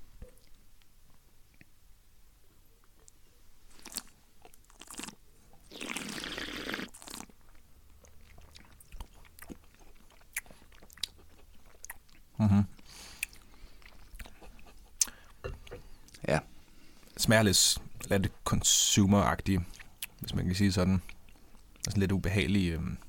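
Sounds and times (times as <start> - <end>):
chewing a liquorice-coated sweet: 2.8 - 15.4, 19.6 - 20.3
speech: 17.3 - 21.1, 21.9 - 23.0.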